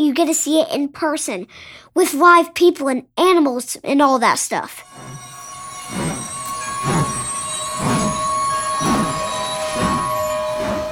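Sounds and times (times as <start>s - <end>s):
speech: 0.0s - 5.2s
rhythmic rumbling thumps of train: 4.8s - 10.9s
train wheels squealing against the rails as train stops: 4.8s - 10.9s.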